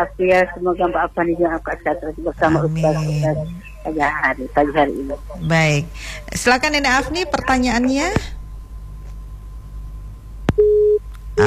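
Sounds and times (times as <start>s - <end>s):
speech: 0.0s - 8.4s
telephone busy tone after a dropped line: 10.6s - 11.4s.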